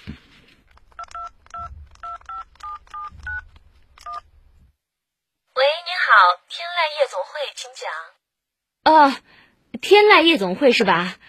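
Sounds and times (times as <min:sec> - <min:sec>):
phone touch-tone dialing beeps: 0:01.0 - 0:03.4
faint low rumble: 0:01.0 - 0:05.1
speech: 0:07.3 - 0:08.2, 0:08.8 - 0:11.2.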